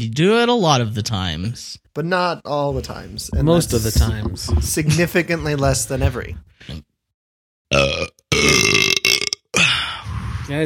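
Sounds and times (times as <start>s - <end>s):
speech: 0.0s - 6.9s, 7.7s - 9.0s, 10.5s - 10.6s
person burping into the microphone: 7.7s - 10.0s.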